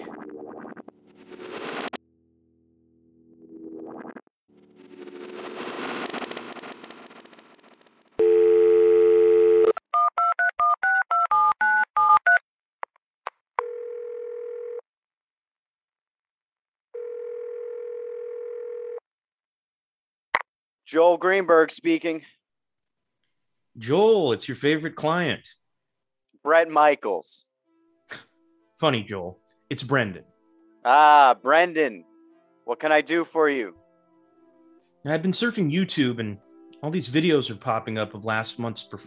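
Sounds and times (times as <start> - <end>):
telephone dial tone: 8.2 - 12.4, 13.6 - 14.8, 17.0 - 19.0
speech: 21.0 - 22.4, 23.8 - 25.6, 26.4 - 27.5, 28.1 - 32.1, 32.7 - 33.8, 35.0 - 39.0.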